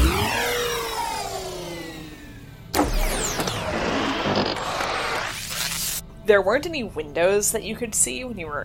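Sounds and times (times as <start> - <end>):
shuttle engines whining up in rising sweeping tones: 0.0 - 6.0
speech: 6.3 - 8.6.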